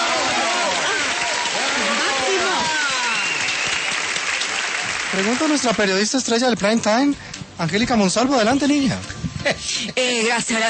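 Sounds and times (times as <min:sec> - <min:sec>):
crowd cheering and shouting: 0:00.0 - 0:05.6
crowd applauding: 0:00.0 - 0:06.9
speech: 0:05.1 - 0:10.6.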